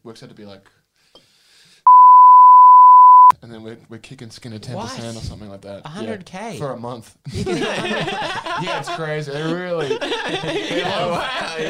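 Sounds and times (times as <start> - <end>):
speech: 0.0 - 0.8, 3.4 - 11.6
censor bleep tone: 1.9 - 3.3
laughter: 7.3 - 11.6.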